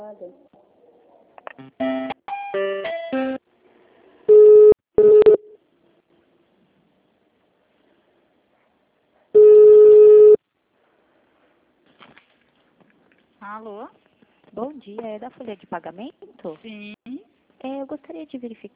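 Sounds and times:
speech: 0.2s - 0.7s, 1.6s - 1.9s, 14.8s - 17.0s, 17.6s - 18.7s
telephone line beeps while a call is transferred: 4.3s - 5.5s, 9.4s - 10.4s.

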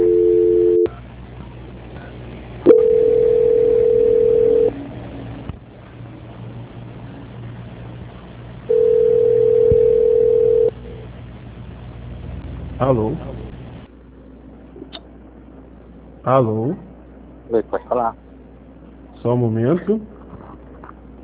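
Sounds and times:
telephone line tone during a call transfer: 0.0s - 0.9s, 2.7s - 4.7s, 8.7s - 10.8s
low hum: 0.0s - 21.2s
speech: 12.9s - 13.3s, 16.2s - 16.9s, 17.5s - 18.2s, 19.2s - 20.2s.

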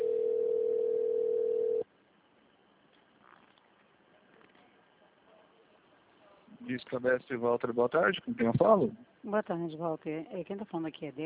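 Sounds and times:
telephone line tone while a call is transferred: 0.0s - 1.8s
speech: 6.8s - 11.2s.

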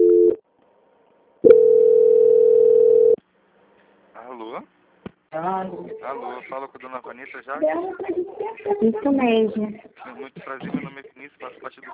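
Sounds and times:
telephone line tone during a bank call transfer: 0.0s - 0.4s, 1.5s - 3.2s
speech: 5.6s - 11.9s.

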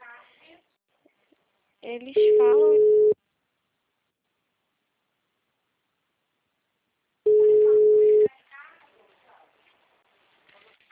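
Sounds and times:
speech: 1.8s - 3.0s
telephone busy tone after a dropped call: 2.2s - 3.2s, 7.3s - 8.3s.

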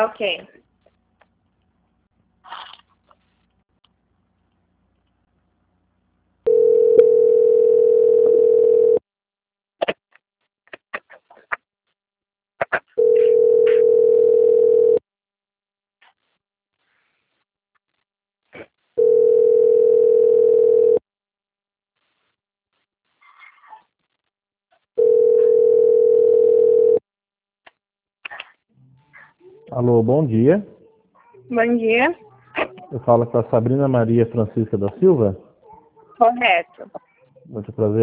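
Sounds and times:
speech: 0.0s - 0.6s, 29.8s - 30.8s, 31.5s - 32.3s, 32.9s - 35.4s, 36.2s - 38.0s
telephone line tone while a call is transferred: 6.5s - 9.0s, 13.0s - 15.0s, 19.0s - 21.0s, 25.0s - 27.0s.

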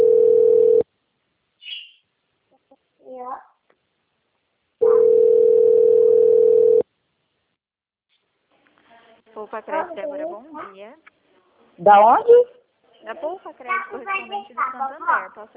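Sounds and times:
telephone dial tone while a call is placed: 0.0s - 0.8s, 4.8s - 6.8s
speech: 9.5s - 11.2s, 11.8s - 15.5s.

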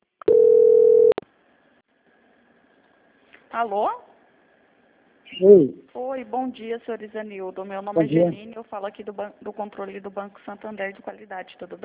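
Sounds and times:
telephone line beep during call transfer: 0.2s - 1.2s
speech: 3.5s - 4.1s, 5.3s - 11.8s.

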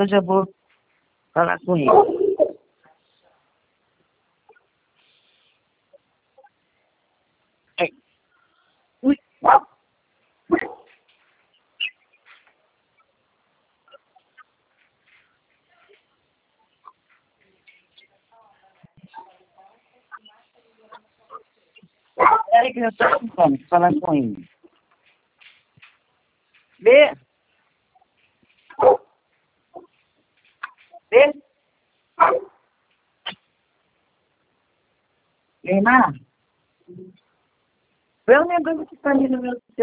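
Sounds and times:
speech: 0.0s - 0.6s, 1.4s - 2.2s, 7.8s - 8.0s, 9.0s - 9.7s, 22.2s - 24.5s, 26.8s - 27.2s, 28.8s - 29.0s, 31.1s - 31.4s, 35.6s - 36.3s, 38.3s - 39.8s
dog barking: 1.8s - 2.6s, 9.4s - 9.8s, 10.5s - 11.0s, 22.2s - 23.4s, 28.7s - 29.1s, 32.2s - 32.6s.

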